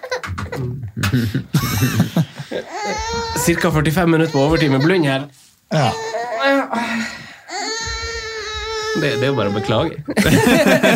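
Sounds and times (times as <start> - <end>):
laughter: 0.5 - 3.8, 9.8 - 10.9
speech: 0.6 - 7.2, 9.0 - 10.9
baby crying through a small speaker or monitor: 2.7 - 6.8, 7.5 - 10.0.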